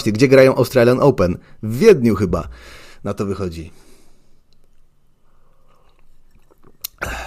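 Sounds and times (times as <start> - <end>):
speech: 0.0 - 3.8
person on a radio broadcast sipping coffee: 5.3 - 7.2
quiet wet mouth and swallowing noises: 5.5 - 7.0.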